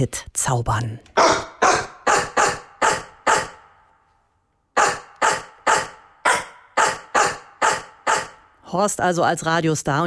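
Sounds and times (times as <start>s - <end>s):
speech: 0.0s - 1.4s, 8.7s - 10.0s
bulldog barking: 1.2s - 3.8s, 4.8s - 8.6s.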